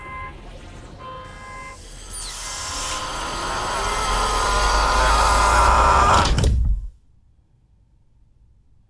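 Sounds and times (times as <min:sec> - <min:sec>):
airlock mechanical tones: 0:01.3 - 0:06.9
pressurized air whooshing out of opening airlock: 0:01.7 - 0:05.9.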